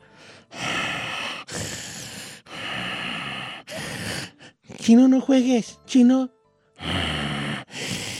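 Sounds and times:
voice imitating heavy snorting breathing: 0.0 - 4.8, 6.8 - 8.1
speech: 4.9 - 7.0.

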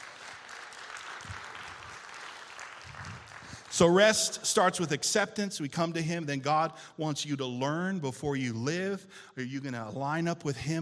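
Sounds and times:
crowd applauding: 0.0 - 4.1
speech: 3.8 - 10.8.

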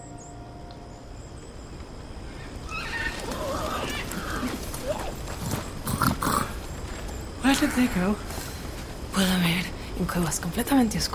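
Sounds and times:
dense noisy background: 0.0 - 11.1
hooves of horses with riders clip-clopping: 1.6 - 9.4
speech: 7.6 - 8.3, 9.2 - 11.1.

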